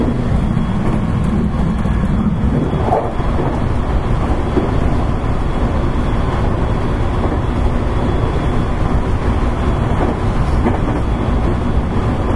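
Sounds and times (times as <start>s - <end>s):
soft rattles and clunks inside a moving train: 0.0s - 5.1s, 9.3s - 12.3s
running noise inside a moving train: 0.0s - 12.3s.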